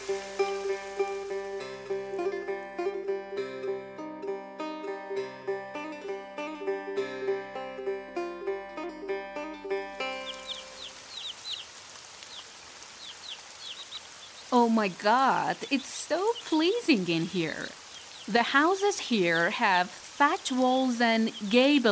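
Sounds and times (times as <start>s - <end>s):
light rain pattering among thatch-walled houses: 0.0s - 2.4s, 9.9s - 21.9s
music: 0.0s - 11.1s
small birds chirping: 9.8s - 21.9s
speech: 14.5s - 21.9s.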